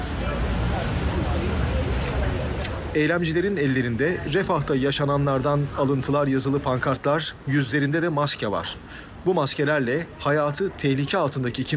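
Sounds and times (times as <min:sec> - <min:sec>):
dense murmur of crowd voices at a protest: 0:00.0 - 0:11.7
low rumbling traffic passing: 0:00.0 - 0:11.7
speech: 0:02.9 - 0:11.7.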